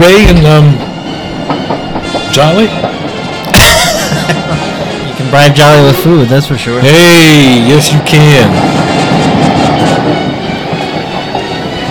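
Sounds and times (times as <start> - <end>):
speech: 0.0 - 0.9, 1.5 - 3.0, 4.3 - 4.6, 5.2 - 8.8
train wheels clattering over the rails: 0.0 - 11.8
laughter: 3.5 - 5.2.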